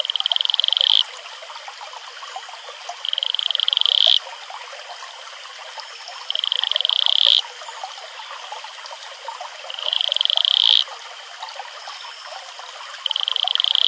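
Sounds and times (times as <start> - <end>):
male Atelopus franciscus advertisement call pulsed trills: 0.0 - 1.0, 3.0 - 4.2, 6.0 - 7.4, 9.7 - 10.9, 13.0 - 13.8.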